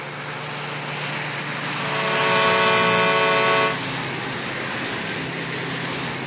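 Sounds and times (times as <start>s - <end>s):
truck engine roaring with road noise: 0.0s - 6.2s
truck horn blast: 1.8s - 3.8s.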